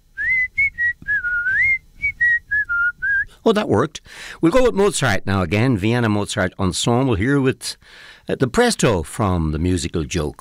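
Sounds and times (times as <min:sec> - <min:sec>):
person whistling a short wavering tune: 0:00.2 - 0:03.3
speech: 0:03.4 - 0:10.4.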